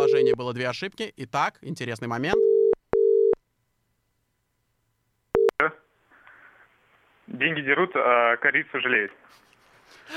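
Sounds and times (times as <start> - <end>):
telephone ringing tone during call attempt: 0.0 - 0.4, 2.4 - 3.4
speech: 0.3 - 2.4, 5.6 - 5.8, 7.3 - 9.4.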